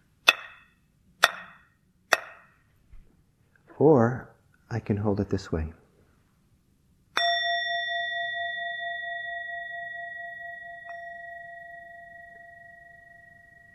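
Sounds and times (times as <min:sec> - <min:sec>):
speech: 0:03.8 - 0:05.8
meditation bell ringing: 0:07.2 - 0:13.7.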